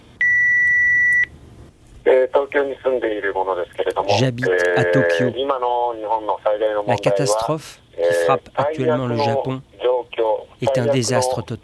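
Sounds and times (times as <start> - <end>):
electronic telephone tone as single steady high-pitched beep: 0.2 - 1.3
speech: 2.1 - 9.8, 10.6 - 11.6.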